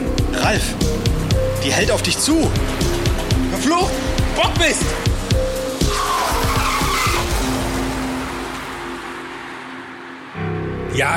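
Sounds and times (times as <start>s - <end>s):
car engine roaring past at speed: 0.0s - 10.8s
speech: 0.4s - 1.0s, 1.6s - 5.1s, 11.0s - 11.1s
car tires squealing in a long skid: 5.8s - 9.8s.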